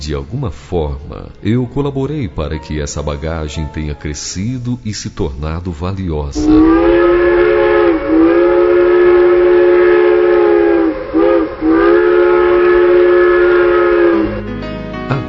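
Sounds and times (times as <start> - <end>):
speech: 0.0 - 7.2
train clanking and rumbling while slowing down: 6.4 - 12.2
steam train whistle blowing: 6.4 - 14.5.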